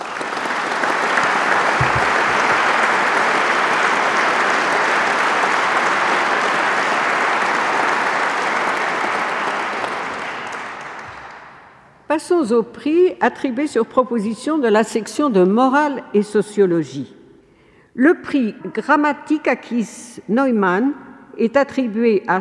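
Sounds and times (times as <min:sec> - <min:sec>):
large audience applauding award winners: 0:00.0 - 0:11.8
speech: 0:12.2 - 0:17.2, 0:18.0 - 0:22.3.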